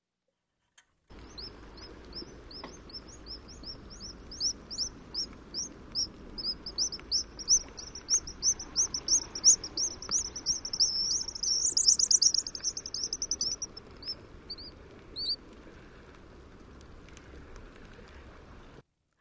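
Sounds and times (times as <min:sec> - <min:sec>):
faint hiss: 0:00.3 - 0:19.2
guillemot giving high squeaky calls: 0:01.2 - 0:15.4.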